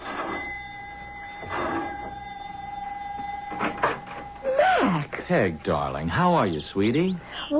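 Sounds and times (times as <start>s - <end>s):
clunks and rattles: 0.0s - 5.6s
electric doorbell at a house buzzing: 0.0s - 7.1s
speech: 5.3s - 7.5s.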